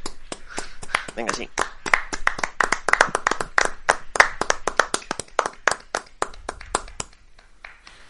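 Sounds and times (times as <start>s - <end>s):
small group of people clapping in applause: 0.0s - 8.0s
speech: 1.2s - 1.7s.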